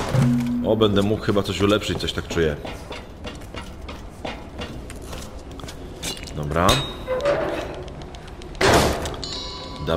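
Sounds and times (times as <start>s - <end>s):
quiet video game sounds: 0.0s - 9.9s
speech: 0.2s - 3.0s, 6.4s - 7.0s.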